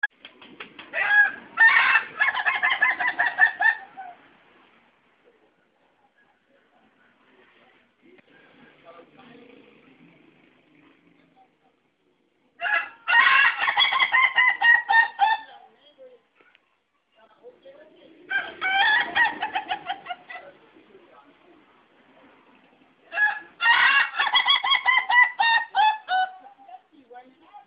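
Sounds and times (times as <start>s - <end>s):
laughing chicken crowing in dangdut style: 0.9s - 4.2s, 12.6s - 15.4s, 18.3s - 19.8s, 23.1s - 26.4s.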